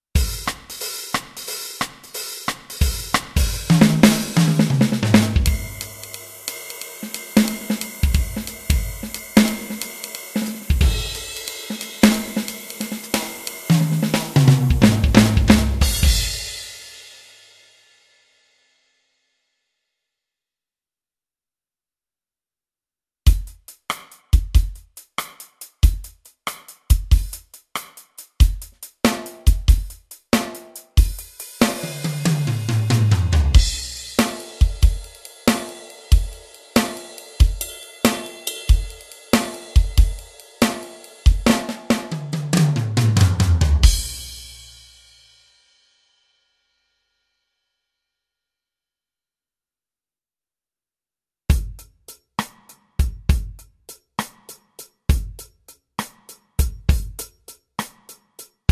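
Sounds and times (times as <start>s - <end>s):
TD20 drum kit pattern: 0.0s - 17.0s, 23.3s - 45.2s, 51.5s - 58.6s.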